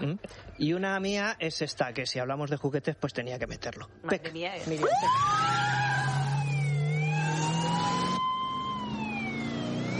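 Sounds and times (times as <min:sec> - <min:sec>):
speech: 0:00.1 - 0:06.1
family car engine revving: 0:04.8 - 0:09.9.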